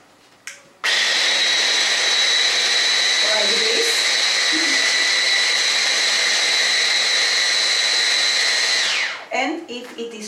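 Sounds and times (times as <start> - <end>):
electric blender blending ingredients: 0.8 - 9.3.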